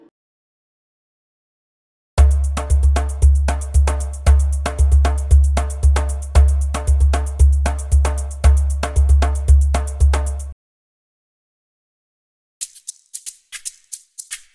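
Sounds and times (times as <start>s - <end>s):
bossa bongo percussion loops: 2.2s - 10.6s, 12.6s - 14.5s.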